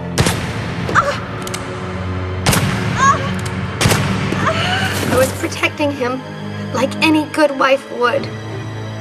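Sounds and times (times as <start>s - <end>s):
gunshots: 0.1s - 1.6s, 2.4s - 4.4s
speech: 5.1s - 8.5s.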